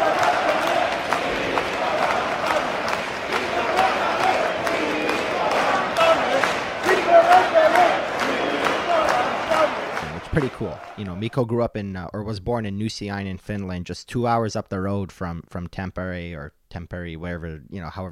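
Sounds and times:
ice hockey arena crowd chanting a player's name in Tampere: 0:00.0 - 0:11.2
speech: 0:10.4 - 0:18.0.

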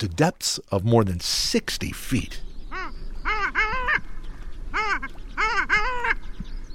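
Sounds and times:
speech: 0:00.0 - 0:02.5
long-tailed ducks calling: 0:02.3 - 0:06.4.

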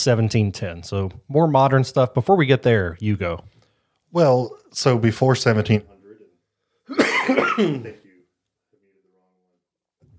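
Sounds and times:
speech: 0:00.0 - 0:05.9, 0:06.9 - 0:08.0
person coughing: 0:06.9 - 0:08.0.

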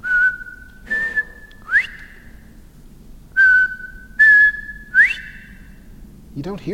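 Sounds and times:
male quail whistling call from a weedy ditch along a fence line: 0:00.0 - 0:02.6, 0:03.4 - 0:05.9.

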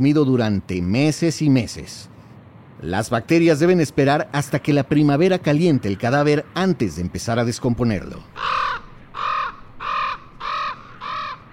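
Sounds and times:
speech: 0:00.0 - 0:02.2, 0:02.8 - 0:08.5
raven giving harsh croaking calls: 0:07.8 - 0:11.5.

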